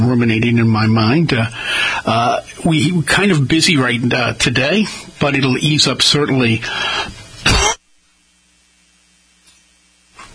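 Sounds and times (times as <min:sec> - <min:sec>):
speech: 0:00.1 - 0:07.2
faint brief breathy sounds: 0:01.5 - 0:02.1, 0:06.6 - 0:07.2
loud harsh cough: 0:07.4 - 0:07.8.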